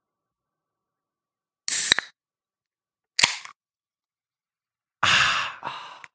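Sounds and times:
hissing air from a bottle of wild berry aronia drink eased open: 0:01.7 - 0:02.1.

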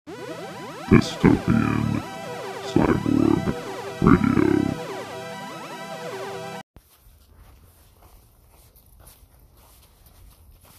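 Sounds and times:
brief synth-like musical burst: 0:00.1 - 0:06.6
speech: 0:00.9 - 0:02.1, 0:02.8 - 0:04.8.

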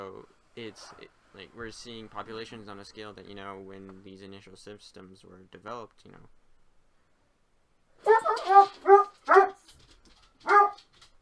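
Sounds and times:
speech: 0:00.2 - 0:06.4
dog with short whiny barks and whimpers: 0:08.0 - 0:09.7, 0:10.4 - 0:10.9.

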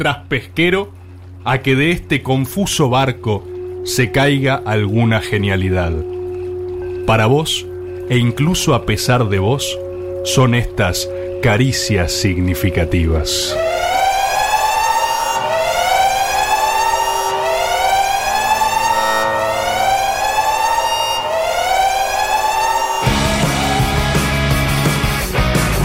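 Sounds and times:
speech: 0:00.0 - 0:06.1, 0:07.1 - 0:13.8
alarm siren wailing: 0:00.0 - 0:25.8.

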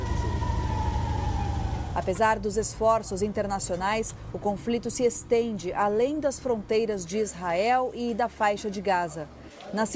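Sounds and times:
air raid warning sirens wailing in Tel Aviv, Israel: 0:00.0 - 0:02.2
low rumbling city noise: 0:00.0 - 0:09.9
speech: 0:02.0 - 0:09.9.

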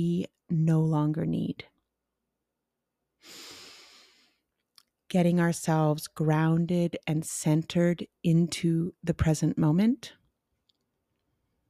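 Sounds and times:
speech: 0:00.0 - 0:01.7, 0:05.1 - 0:10.2
long deep breath in during a guided deep-breathing exercise: 0:03.2 - 0:04.4.

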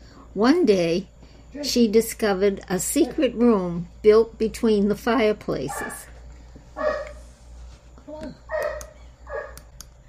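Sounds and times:
low steady hum: 0:00.0 - 0:10.0
speech: 0:00.4 - 0:06.1
pet dogs barking: 0:05.6 - 0:06.1, 0:06.8 - 0:07.2, 0:08.5 - 0:09.7
dog yelping: 0:06.8 - 0:07.2, 0:08.5 - 0:09.6.

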